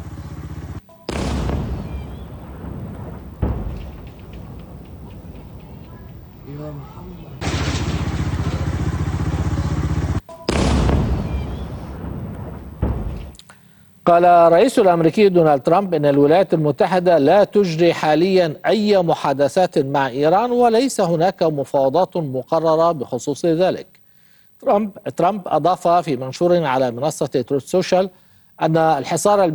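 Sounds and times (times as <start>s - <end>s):
explosions from an airstrike in southern Lebanon: 1.0s - 9.3s, 10.5s - 13.4s
speech: 14.1s - 24.0s, 24.6s - 29.5s.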